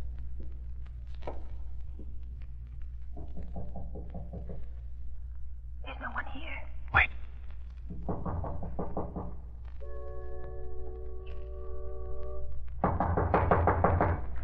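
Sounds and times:
low steady hum: 0:00.0 - 0:13.3
knocking on a door: 0:03.2 - 0:04.7, 0:07.9 - 0:09.5, 0:12.8 - 0:14.4.

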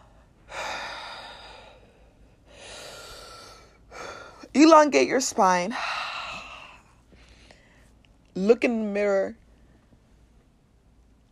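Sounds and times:
deep breaths: 0:00.0 - 0:04.5, 0:05.7 - 0:08.0
speech: 0:04.6 - 0:06.0, 0:08.4 - 0:09.4.

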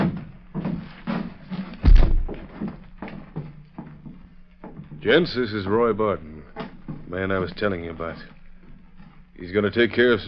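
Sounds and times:
door opening and closing as someone comes in: 0:01.8 - 0:02.7
heavy thud: 0:01.8 - 0:02.7
speech: 0:05.0 - 0:06.3, 0:07.1 - 0:08.4, 0:09.4 - 0:10.2.

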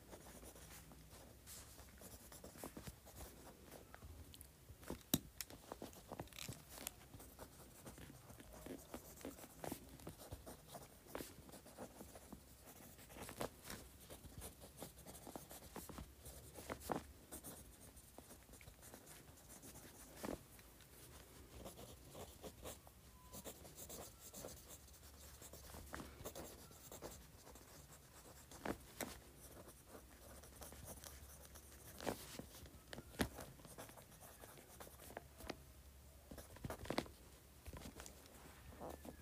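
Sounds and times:
faint low hum: 0:00.0 - 0:39.1
pen moving quickly across paper: 0:00.1 - 0:03.5, 0:07.2 - 0:13.3, 0:14.0 - 0:20.2, 0:21.6 - 0:28.7, 0:29.4 - 0:32.6, 0:33.3 - 0:35.2.

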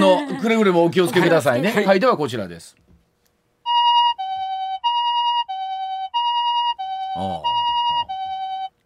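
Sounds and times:
laughter: 0:00.0 - 0:02.0
speech: 0:00.0 - 0:02.8, 0:07.2 - 0:07.6
classic Japanese two-tone ambulance siren: 0:03.7 - 0:08.7.

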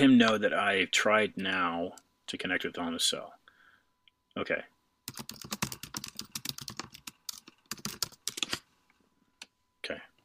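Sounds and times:
speech: 0:00.0 - 0:03.4, 0:04.4 - 0:05.6
typing on a computer keyboard: 0:05.1 - 0:08.6.

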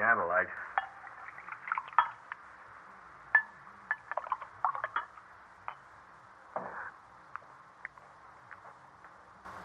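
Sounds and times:
speech: 0:00.1 - 0:00.8
glasses clinking: 0:00.8 - 0:02.4, 0:03.4 - 0:05.9
wine poured into a glass: 0:00.8 - 0:02.4, 0:03.4 - 0:05.1.

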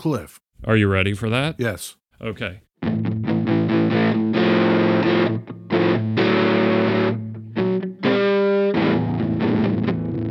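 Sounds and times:
speech: 0:00.0 - 0:02.7
Telecaster electric guitar strummed through a fuzz distortion pedal preset: 0:02.8 - 0:10.3.

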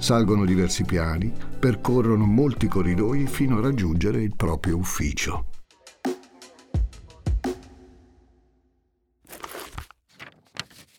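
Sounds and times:
speech: 0:00.0 - 0:05.5
crisp paper rustling as a man turns diary pages: 0:09.3 - 0:10.9.

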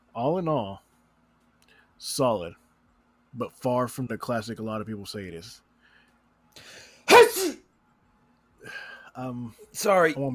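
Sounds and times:
speech: 0:00.2 - 0:00.9, 0:02.0 - 0:02.6, 0:03.4 - 0:05.6, 0:06.6 - 0:07.6, 0:08.6 - 0:10.3
loud sneeze: 0:07.0 - 0:07.6.

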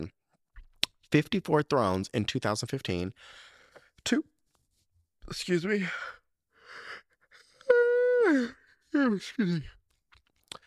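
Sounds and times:
speech: 0:01.1 - 0:04.3, 0:05.3 - 0:06.2, 0:08.3 - 0:09.8
person yawning: 0:07.4 - 0:08.7.

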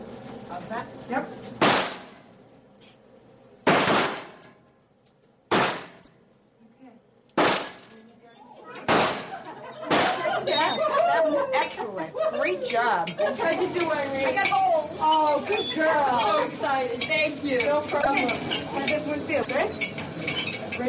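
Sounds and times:
speech: 0:00.5 - 0:01.9, 0:11.7 - 0:19.9
handgun shots at a gun club shooting range: 0:01.6 - 0:02.2, 0:03.7 - 0:04.5, 0:05.5 - 0:06.0, 0:07.4 - 0:07.9, 0:08.9 - 0:09.3
laughter: 0:09.2 - 0:14.4.

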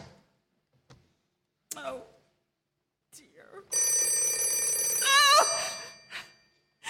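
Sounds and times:
telephone bell ringing: 0:03.7 - 0:06.6.

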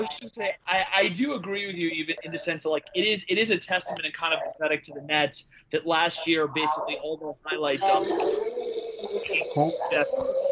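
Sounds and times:
speech: 0:00.0 - 0:10.5
liquid pouring into a glass: 0:07.8 - 0:10.5.

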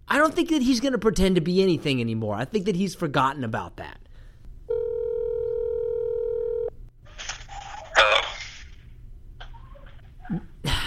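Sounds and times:
speech: 0:00.2 - 0:04.0, 0:10.3 - 0:10.5
steady electronic phone ringing tone: 0:04.7 - 0:06.8.

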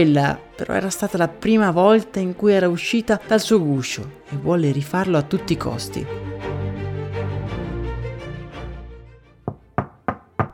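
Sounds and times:
speech: 0:00.0 - 0:06.5
soft music: 0:00.0 - 0:10.5
girl knocking on a little house at a shooting club entrance: 0:09.5 - 0:10.5.

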